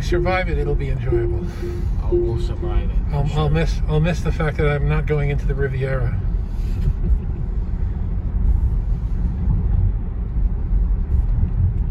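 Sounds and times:
car engine rumble in an underground tunnel: 0:00.0 - 0:11.8
road noise in an underground tunnel: 0:00.0 - 0:11.8
speech: 0:00.1 - 0:07.2.

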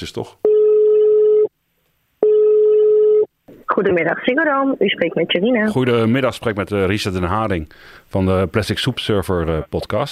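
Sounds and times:
speech: 0:00.0 - 0:00.5, 0:03.8 - 0:10.1
telephone line tone while a call is being placed: 0:02.2 - 0:03.3.

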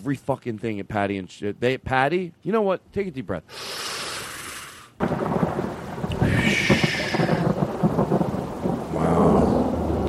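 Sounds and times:
speech: 0:00.0 - 0:04.0, 0:05.0 - 0:05.4
loud close thunderclap with crackling rumble: 0:05.0 - 0:10.0
steady rain pattering: 0:05.0 - 0:10.0.

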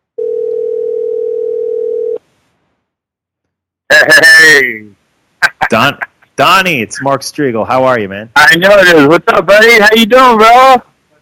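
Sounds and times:
telephone ringing on a call line: 0:00.2 - 0:02.2
speech: 0:03.9 - 0:05.0, 0:05.6 - 0:10.9.

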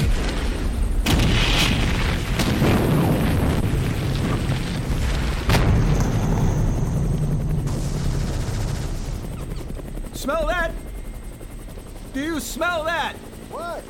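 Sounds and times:
heavy roar and rumble of napalm bombing explosions on a tree line: 0:00.0 - 0:10.5
speech: 0:12.4 - 0:13.8.

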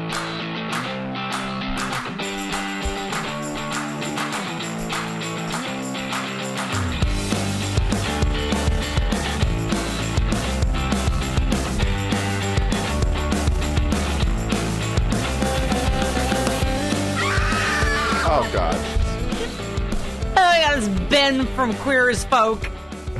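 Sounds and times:
loud driving music: 0:00.0 - 0:23.1
high excited human scream: 0:17.1 - 0:18.5
speech: 0:21.6 - 0:22.8.

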